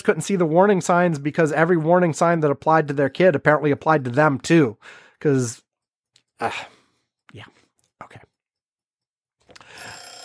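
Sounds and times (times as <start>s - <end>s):
speech: 0.0s - 5.6s, 6.4s - 8.3s
timer ringing: 9.6s - 10.2s.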